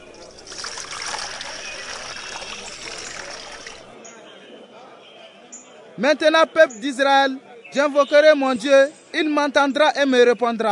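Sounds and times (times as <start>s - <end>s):
water poured into a trench around an altar: 0.0s - 3.9s
speech: 6.0s - 10.7s.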